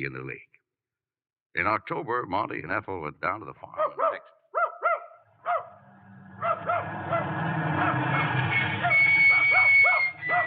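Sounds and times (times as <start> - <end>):
speech: 0.0 - 0.5, 1.5 - 4.3
dog barking: 3.8 - 5.8, 6.4 - 8.0, 9.3 - 10.4.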